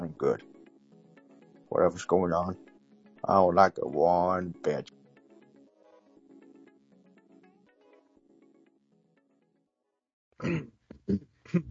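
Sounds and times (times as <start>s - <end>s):
speech: 0.2s - 0.5s, 1.8s - 5.0s, 10.4s - 11.6s
loud coughs: 10.4s - 11.6s.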